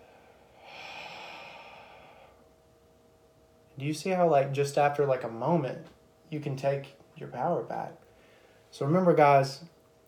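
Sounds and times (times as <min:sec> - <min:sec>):
deep breath during a guided relaxation exercise: 0:00.0 - 0:02.5, 0:08.1 - 0:08.7
speech: 0:03.8 - 0:08.0, 0:08.7 - 0:09.8.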